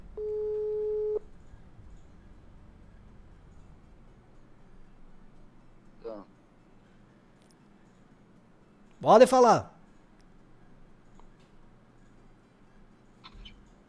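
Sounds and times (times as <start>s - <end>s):
steady telephone tone while a number is dialed: 0.0s - 1.7s
quiet hissing telephone line: 0.0s - 4.4s
speech: 9.0s - 9.7s.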